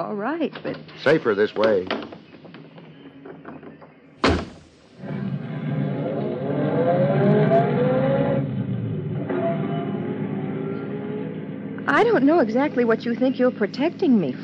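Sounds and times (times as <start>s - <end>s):
speech: 0.0s - 2.0s, 12.2s - 14.4s
car door slamming shut: 4.2s - 4.9s
car engine starting and revving as the car drives away: 4.2s - 12.3s.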